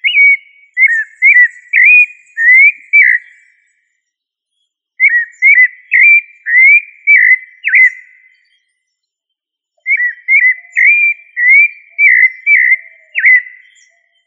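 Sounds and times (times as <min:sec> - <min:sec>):
thrush of family Turdidae whistling phrases: 0:00.0 - 0:03.6, 0:05.0 - 0:08.2, 0:09.8 - 0:14.0.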